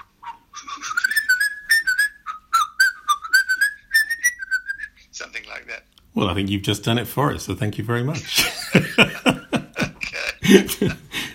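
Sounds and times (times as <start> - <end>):
person whistling a brisk sailor's hornpipe tune: 0.9 - 5.0
speech: 6.2 - 9.1, 10.5 - 11.0
laughter: 8.2 - 11.3.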